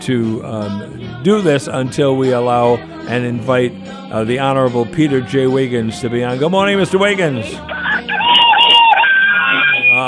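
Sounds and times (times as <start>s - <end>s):
speech: 0.0s - 7.8s
person imitating rooster crow: 7.7s - 10.0s.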